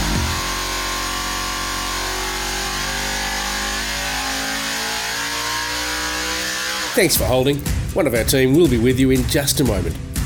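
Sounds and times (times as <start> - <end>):
powerful performance car engine revving at high RPM: 0.0 - 7.8
speech: 7.0 - 10.1.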